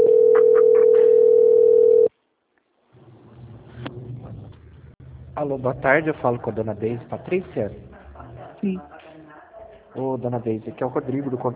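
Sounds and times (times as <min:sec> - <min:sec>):
steady telephone tone on a bank customer-service call: 0:00.0 - 0:02.1
speech: 0:05.4 - 0:07.9, 0:08.6 - 0:08.9, 0:10.0 - 0:11.5.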